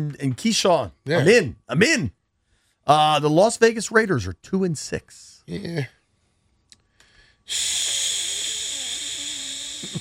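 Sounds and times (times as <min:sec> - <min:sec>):
speech: 0:00.0 - 0:02.2, 0:02.9 - 0:06.0, 0:07.5 - 0:08.0
short breath: 0:06.9 - 0:09.9
voice imitating food sizzling in a pan: 0:07.5 - 0:09.9.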